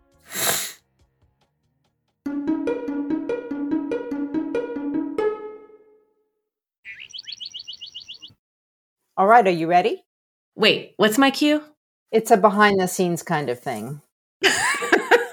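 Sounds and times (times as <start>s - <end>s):
loud sharp nasal sniff from nasal congestion: 0.2s - 0.8s
bright electronic melody of repeated notes: 2.3s - 6.0s
high chirping beeps: 6.9s - 8.3s
speech: 9.2s - 14.1s
laughter: 14.4s - 15.3s.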